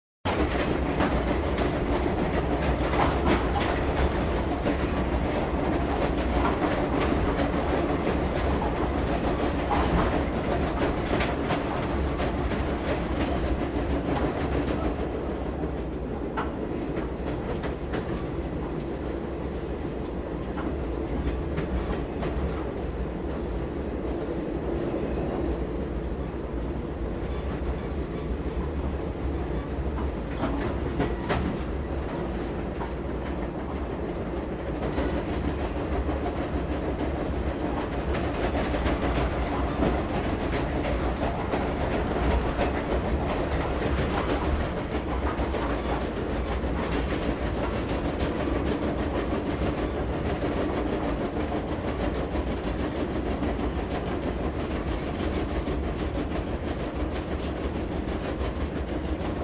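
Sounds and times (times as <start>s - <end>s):
train vestibule noise: 0.3s - 59.4s.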